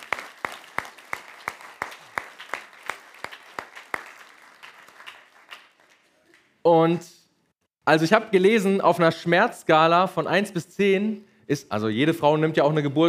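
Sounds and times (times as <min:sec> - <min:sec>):
applause: 0:00.0 - 0:06.6
speech: 0:06.6 - 0:07.2, 0:07.9 - 0:13.0.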